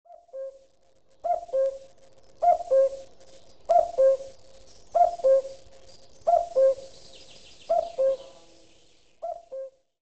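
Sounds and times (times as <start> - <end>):
cuckoo call sound on a phone: 0.1 - 0.6, 1.2 - 3.1, 3.7 - 4.3, 5.0 - 5.6, 6.3 - 6.9, 7.7 - 8.4, 9.2 - 9.8.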